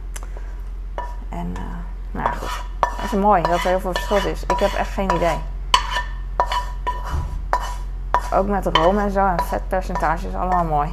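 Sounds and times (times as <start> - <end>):
low hum: 0.0 - 10.9
speech: 1.4 - 5.5, 8.3 - 10.9
pan being washed among dishes clinking and clanking: 2.3 - 10.7.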